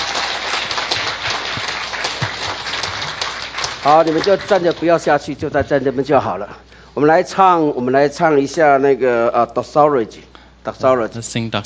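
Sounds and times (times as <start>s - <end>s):
audience applauding: 0.0s - 5.5s
speech: 3.8s - 11.6s.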